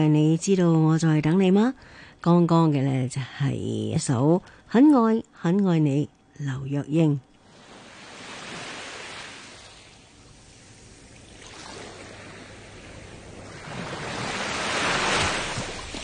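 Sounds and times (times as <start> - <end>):
speech: 0.0 - 7.3
ocean waves washing onto a sandy beach: 7.5 - 16.0.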